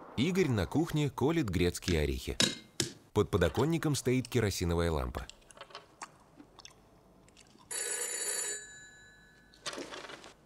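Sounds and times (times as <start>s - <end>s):
speech: 0.2s - 2.6s, 3.2s - 5.4s
telephone bell ringing in a room: 7.7s - 9.7s.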